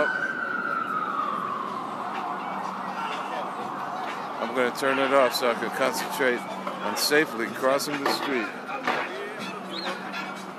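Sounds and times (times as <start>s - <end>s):
ambulance siren wailing along a street in Times Square: 0.0s - 8.2s
city traffic noise in Times Square: 0.0s - 10.5s
speech: 4.4s - 8.6s.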